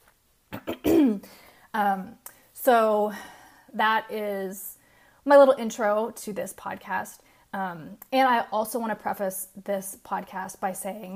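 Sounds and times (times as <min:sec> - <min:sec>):
person clearing throat from a blueberry seed stuck in throat: 0:00.5 - 0:01.3
speech: 0:01.0 - 0:11.1.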